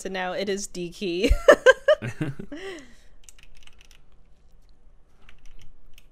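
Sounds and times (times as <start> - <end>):
speech: 0.0 - 2.9
person laughing: 1.3 - 2.9.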